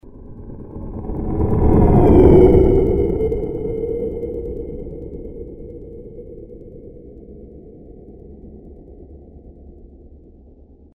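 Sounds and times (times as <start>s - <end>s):
spaceship with Doppler effect: 0.0s - 8.3s.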